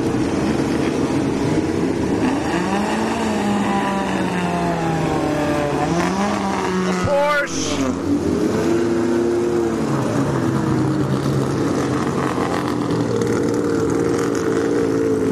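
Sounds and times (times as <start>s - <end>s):
classic sports car engines driving past on a racetrack: 0.0s - 15.3s.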